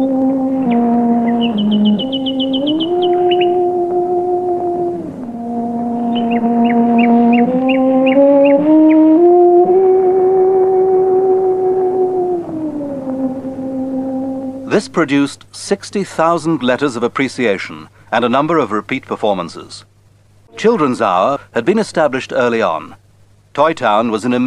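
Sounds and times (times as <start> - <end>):
nightingale singing in a wood in Surrey England: 0.0 - 9.4
cello playing slow bowed notes in a wood in Surrey England: 0.0 - 15.1, 20.5 - 21.3
speech: 14.8 - 19.9, 20.6 - 23.0, 23.6 - 24.4.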